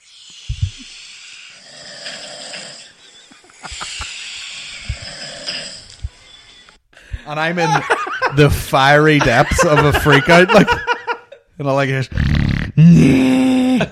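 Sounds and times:
loud rasping snoring: 0:00.0 - 0:06.2
speech: 0:07.3 - 0:10.9, 0:11.6 - 0:13.4
laughter: 0:07.6 - 0:11.4.

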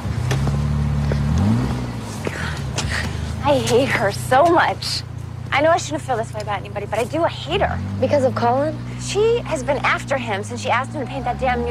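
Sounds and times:
car engine revving and driving away: 0:00.0 - 0:11.6
speech: 0:03.5 - 0:11.6.

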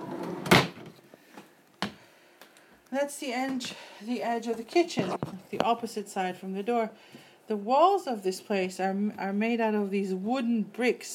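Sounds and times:
kitchen drawer sliding open and shut: 0:00.0 - 0:01.0
speech: 0:02.9 - 0:11.1
quiet rustling: 0:04.4 - 0:06.0.

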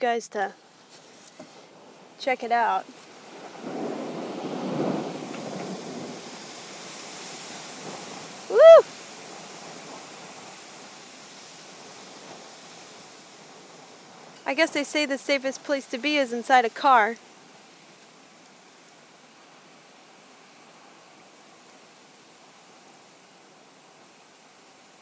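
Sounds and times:
speech: 0:00.0 - 0:00.7, 0:02.2 - 0:03.0, 0:14.5 - 0:17.3
low rolling thunder: 0:03.1 - 0:14.9
strong wind roaring: 0:03.1 - 0:16.8.

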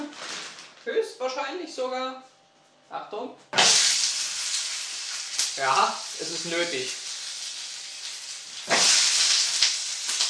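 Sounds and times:
speech: 0:00.9 - 0:02.3, 0:02.9 - 0:03.6, 0:05.6 - 0:07.0
potato pancakes sizzling in a frying pan: 0:03.6 - 0:10.2.

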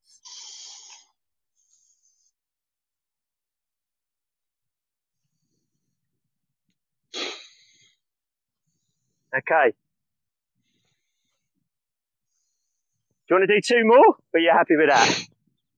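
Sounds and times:
breathing in through the nose and out through the mouth in a breathing exercise: 0:00.0 - 0:02.4, 0:07.1 - 0:09.4, 0:10.5 - 0:13.3
speech: 0:09.4 - 0:09.8, 0:13.3 - 0:15.3.

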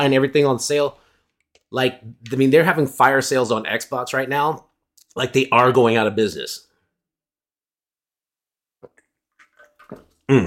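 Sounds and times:
speech: 0:00.0 - 0:01.0, 0:01.7 - 0:06.7, 0:09.9 - 0:10.4
water bottle handling: 0:08.8 - 0:10.2
loud breathy exhale at the microphone: 0:10.3 - 0:10.4.

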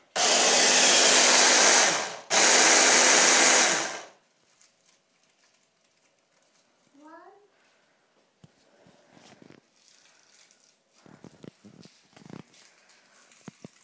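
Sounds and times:
blender blending peeled garlic: 0:00.0 - 0:04.2.

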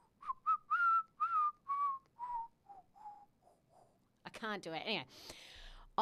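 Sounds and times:
person whistling a short tune: 0:00.0 - 0:03.3
speech: 0:04.4 - 0:06.0.

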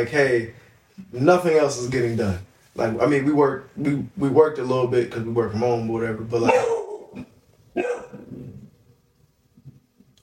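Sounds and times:
speech: 0:00.0 - 0:07.9
dog barking: 0:06.4 - 0:07.2, 0:07.8 - 0:08.3.

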